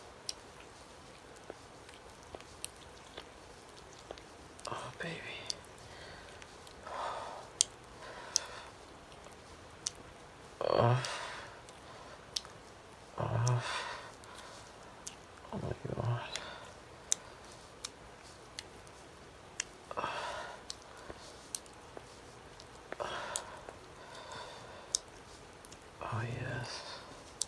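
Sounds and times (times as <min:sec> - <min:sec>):
small mouth noises: 0:00.1 - 0:27.4
man breathing heavily: 0:05.2 - 0:09.7, 0:10.4 - 0:15.0, 0:19.8 - 0:25.5, 0:26.5 - 0:27.4
man moaning: 0:10.6 - 0:11.2.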